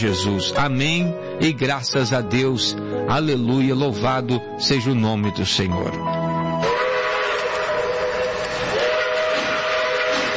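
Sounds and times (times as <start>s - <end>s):
speech: 0.0s - 6.2s
steam locomotive whistle blowing in the mountains of Minas Gerais Brazil: 6.6s - 10.3s.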